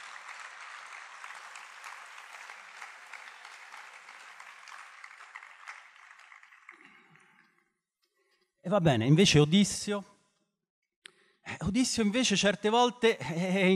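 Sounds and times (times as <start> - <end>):
large crowd applauding: 0.0 - 7.7
speech: 8.6 - 10.1, 11.7 - 13.7.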